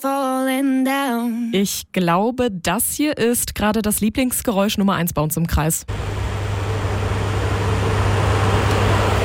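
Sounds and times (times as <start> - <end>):
speech: 0.0 - 6.4
electric fan running: 5.9 - 9.2.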